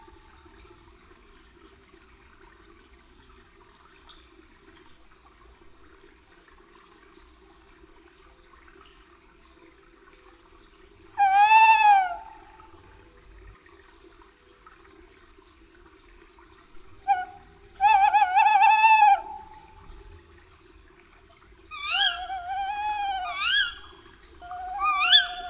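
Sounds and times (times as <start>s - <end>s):
tawny owl calling in drawn-out wavering notes: 11.2s - 12.6s, 17.0s - 19.7s, 21.7s - 25.4s.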